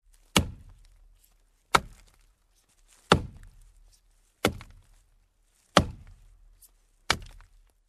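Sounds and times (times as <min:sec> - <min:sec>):
chopping wood: 0:00.1 - 0:01.0, 0:01.7 - 0:02.3, 0:02.9 - 0:03.7, 0:04.4 - 0:05.0, 0:05.7 - 0:06.3, 0:07.1 - 0:07.6.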